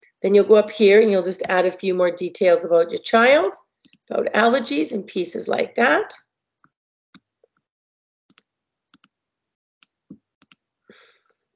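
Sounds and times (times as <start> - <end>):
speech: 0.2 - 6.3
computer mouse clicking while a form is filled in: 3.8 - 4.1, 8.3 - 9.1, 9.8 - 10.6.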